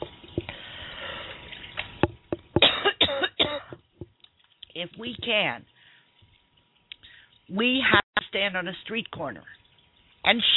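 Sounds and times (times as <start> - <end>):
person coughing with throaty coughs and harsh hacks: 2.6 - 3.8
speech: 4.8 - 5.7, 7.5 - 9.6, 10.3 - 10.5.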